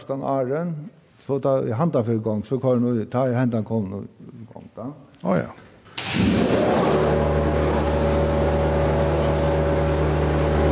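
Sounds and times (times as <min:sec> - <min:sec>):
speech: 0:00.1 - 0:07.5
conveyor belt running: 0:06.1 - 0:10.7.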